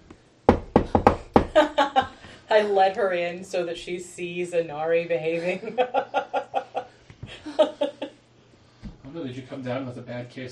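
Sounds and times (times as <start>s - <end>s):
firm knocking on a door: 0.5s - 1.6s
laughter: 1.6s - 2.4s, 5.2s - 8.2s
speech: 2.5s - 6.3s, 9.2s - 10.5s.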